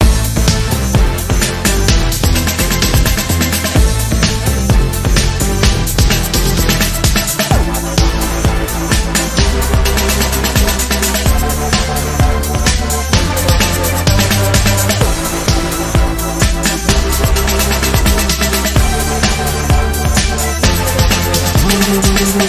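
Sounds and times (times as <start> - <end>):
sprinkler music: 0.0 - 22.4.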